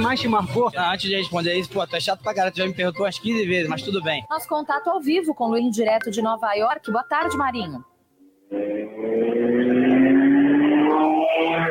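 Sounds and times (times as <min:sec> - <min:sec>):
speech: 0:00.0 - 0:07.9, 0:08.5 - 0:09.7
motorcycle accelerating past: 0:08.4 - 0:11.7.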